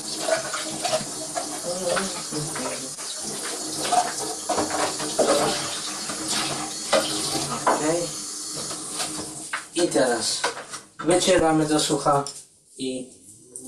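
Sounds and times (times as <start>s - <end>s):
tap water running: 0.0s - 10.6s
speech: 1.9s - 2.6s, 9.9s - 13.2s.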